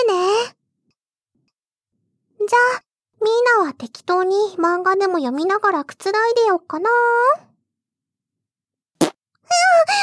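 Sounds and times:
speech: 2.4s - 7.5s, 9.5s - 10.0s
fart: 9.0s - 9.2s.

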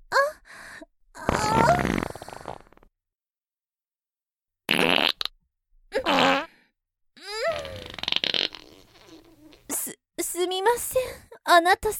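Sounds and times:
loud farts, some long and sputtering: 1.3s - 2.9s, 4.7s - 5.3s, 6.0s - 6.5s, 7.4s - 9.7s
speech: 10.8s - 11.9s.

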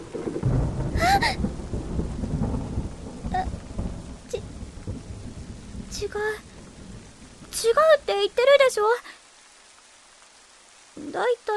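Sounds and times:
thunder rumbling during a rainstorm: 0.0s - 9.2s
steady rain: 0.0s - 11.5s
speech: 6.0s - 6.5s, 7.6s - 9.1s, 11.2s - 11.5s.

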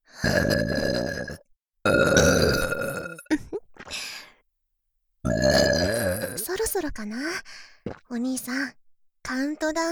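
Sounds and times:
speech: 0.2s - 1.0s, 8.4s - 9.9s
deliberate deep rasping burps: 0.2s - 3.4s, 5.2s - 6.5s.

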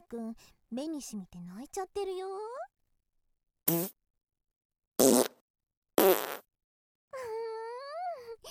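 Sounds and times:
speech: 0.1s - 2.6s, 3.7s - 4.0s
short sharp fart bursts: 3.7s - 4.0s, 5.0s - 5.4s, 6.0s - 6.5s.

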